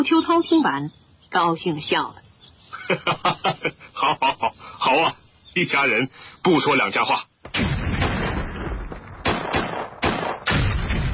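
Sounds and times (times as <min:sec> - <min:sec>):
speech: 0:00.0 - 0:02.2, 0:02.9 - 0:07.8
laughter: 0:02.7 - 0:04.6
artillery fire rumbling: 0:07.5 - 0:11.1
heavy artillery booms: 0:07.5 - 0:11.1.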